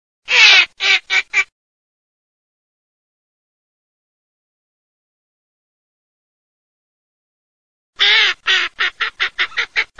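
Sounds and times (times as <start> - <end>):
Northern shoveler giving harsh nasal quacking notes: 0.3 - 1.5, 8.0 - 9.9.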